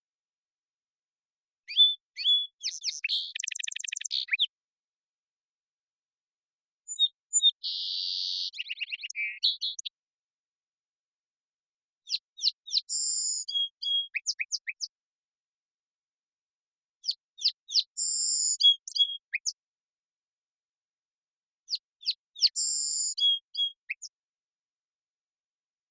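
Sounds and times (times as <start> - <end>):
song sparrow Melospiza melodia singing in Washington: 1.6 - 4.6, 6.9 - 10.0, 12.0 - 15.0, 17.0 - 19.6, 21.7 - 24.2.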